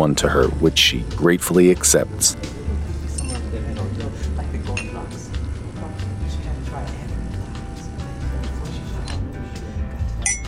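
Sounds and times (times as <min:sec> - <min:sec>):
speech: 0:00.0 - 0:02.6
indistinct chatter: 0:00.0 - 0:09.9
steady low room hum: 0:00.0 - 0:10.4
two ceramic coffee mugs clinking together: 0:03.1 - 0:03.5, 0:10.2 - 0:10.4.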